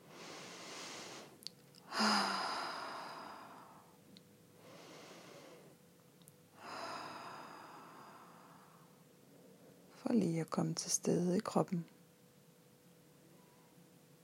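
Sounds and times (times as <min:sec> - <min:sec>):
slow deep breaths in and out: 0:00.0 - 0:05.8, 0:06.5 - 0:09.0
speech: 0:10.0 - 0:12.0.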